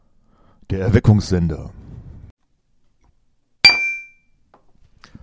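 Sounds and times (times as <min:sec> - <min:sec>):
speech: 0:00.7 - 0:01.8
glasses clinking in a toast: 0:03.7 - 0:04.3.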